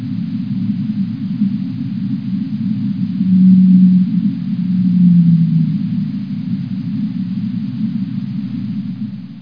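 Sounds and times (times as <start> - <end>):
deep underwater rumble: 0.0 - 9.4
blue whale giving low tonal moans: 3.1 - 6.4.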